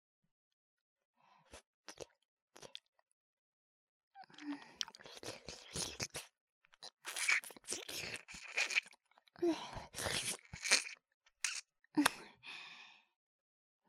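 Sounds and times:
slurping and clicking mouth sounds: 4.4s - 9.0s, 9.9s - 12.1s
wet ear licking mouth sounds for ASMR: 7.0s - 8.9s, 10.0s - 11.6s.

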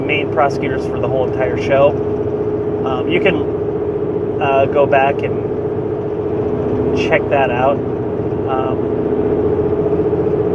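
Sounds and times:
road and engine hum in the cabin of a moving car: 0.0s - 10.5s
speech: 0.4s - 2.1s, 2.8s - 3.6s, 4.4s - 5.5s, 7.0s - 9.4s.

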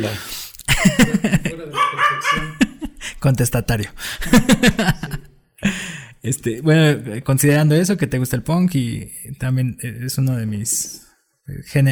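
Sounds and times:
speech: 0.0s - 2.6s, 3.2s - 5.2s, 6.2s - 11.9s
laughter: 0.7s - 3.2s, 4.2s - 5.4s
dog barking: 1.8s - 2.6s.

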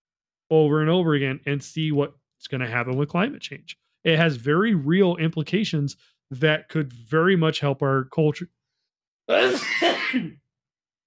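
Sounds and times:
speech: 0.5s - 8.6s, 9.3s - 10.4s
single loud sneeze: 9.3s - 10.4s.

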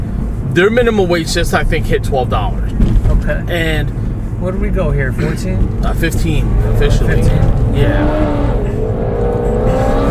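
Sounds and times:
speech: 0.5s - 8.5s
muscle car engine revving: 5.9s - 10.0s.

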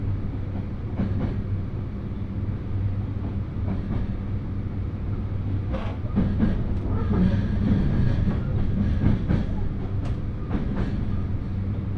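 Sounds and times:
local train on a single-track line rumbling and humming inside: 0.0s - 11.9s
rail clicks and knocks: 0.4s - 1.5s, 3.1s - 4.8s, 5.5s - 11.9s.

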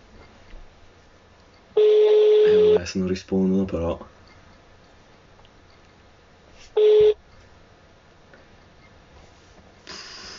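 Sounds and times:
loud telephone tone of an unanswered phone call: 1.8s - 2.8s, 6.8s - 7.2s
speech: 2.8s - 4.2s.

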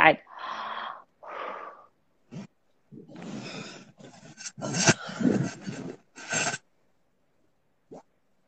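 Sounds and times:
raspy breathing during a breathing exercise: 0.3s - 6.6s.

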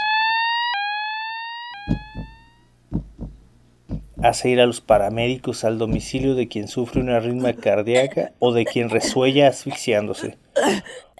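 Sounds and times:
fire alarm steady electronic tone: 0.0s - 3.3s
pairs of deep thumps: 1.9s - 7.3s
speech: 4.2s - 11.1s.

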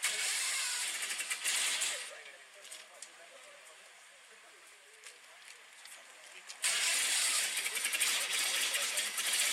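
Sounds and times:
car engine cranking and starting: 0.0s - 2.3s, 6.4s - 9.5s.

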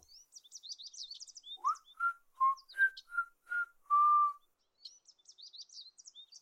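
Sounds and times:
high birdsong chirping and trilling: 0.0s - 6.4s
person whistling a tune: 1.6s - 4.4s.

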